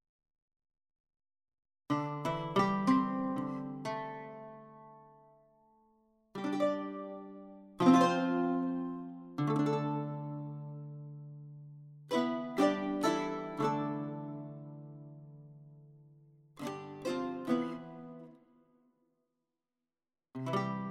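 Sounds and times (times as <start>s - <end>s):
medieval lute playing: 2.0s - 5.1s, 6.4s - 11.4s, 12.1s - 15.6s, 16.6s - 18.4s, 20.4s - 20.8s.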